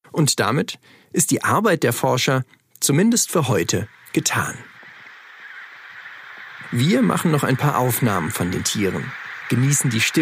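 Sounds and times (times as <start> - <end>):
speech: 0.2 - 4.7, 6.7 - 10.2
penguin colony honking and braying in chorus: 3.4 - 10.2.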